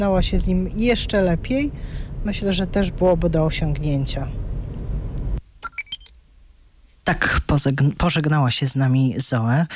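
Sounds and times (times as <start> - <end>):
speech: 0.0 - 4.4, 7.1 - 9.7
low engine-like hum: 0.0 - 5.4.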